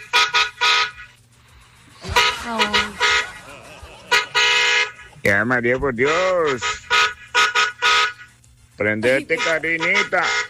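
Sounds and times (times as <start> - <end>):
short loud car horn honks: 0.0 - 1.1, 2.0 - 3.4, 4.1 - 5.0, 5.9 - 8.4, 9.1 - 10.4
laughter: 2.0 - 5.3
speech: 2.5 - 2.7, 5.2 - 6.8, 8.8 - 10.4.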